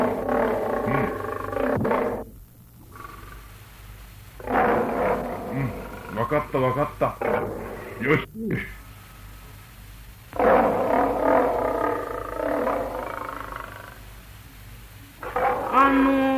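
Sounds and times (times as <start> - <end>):
lion roaring: 0.0 - 2.3, 4.4 - 6.6, 7.2 - 8.1, 10.4 - 14.0, 15.2 - 16.3
speech: 6.5 - 8.8.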